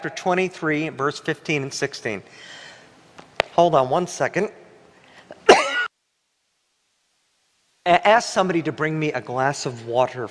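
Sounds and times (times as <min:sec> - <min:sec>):
speech: 0:00.0 - 0:02.6, 0:03.6 - 0:04.6, 0:07.9 - 0:10.2
harsh hoarse cough: 0:05.4 - 0:05.9.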